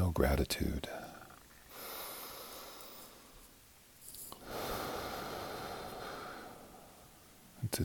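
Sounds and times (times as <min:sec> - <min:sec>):
speech: 0:00.1 - 0:01.1, 0:07.6 - 0:07.8
slow breathing in during a guided meditation: 0:01.7 - 0:03.5, 0:04.3 - 0:07.4.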